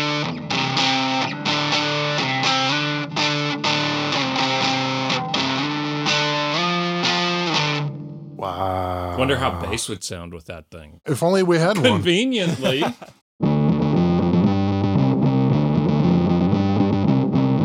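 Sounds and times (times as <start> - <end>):
electric guitar through a saturated overdrive distortion pedal without clipping diodes: 0.0 - 8.3, 13.4 - 17.6
speech: 9.2 - 13.2
laughter: 11.7 - 13.2.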